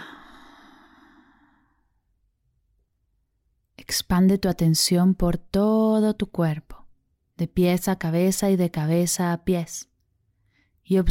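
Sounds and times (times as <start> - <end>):
slow faint exhale during a guided breathing exercise: 0.0 - 1.9
speech: 3.9 - 6.8, 7.4 - 9.9, 10.9 - 11.1.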